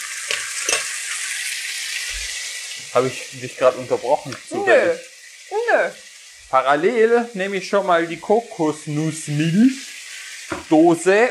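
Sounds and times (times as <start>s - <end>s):
food sizzling in a hot pan on an induction hob: 0.0s - 11.3s
speech: 2.9s - 9.9s, 10.5s - 11.3s.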